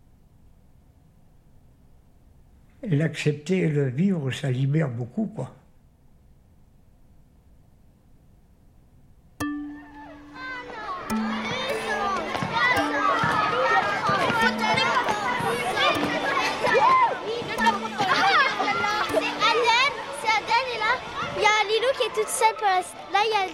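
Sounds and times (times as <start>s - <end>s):
speech: 2.8s - 5.6s
crowd of children shouting and squealing while playing tag in a playground: 9.7s - 23.5s.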